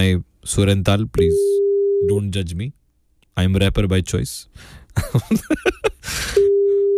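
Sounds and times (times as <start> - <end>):
speech: 0.0 - 2.8, 3.4 - 6.6
laughter: 5.0 - 6.0
phone line ringing tone as a call is placed: 6.4 - 6.9.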